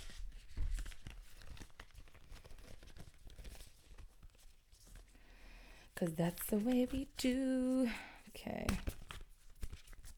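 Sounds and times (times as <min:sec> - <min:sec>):
deck of cards being shuffled: 0:00.0 - 0:05.0, 0:06.2 - 0:10.1
speech: 0:06.0 - 0:09.0.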